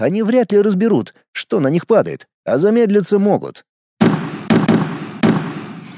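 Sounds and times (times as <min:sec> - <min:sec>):
speech: 0:00.0 - 0:03.7
grenade explosions on a field: 0:04.0 - 0:05.9.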